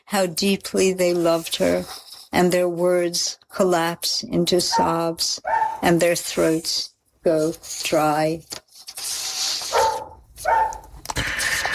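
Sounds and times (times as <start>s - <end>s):
speech: 0.1s - 8.6s
dog barking: 4.7s - 5.8s, 9.7s - 10.9s.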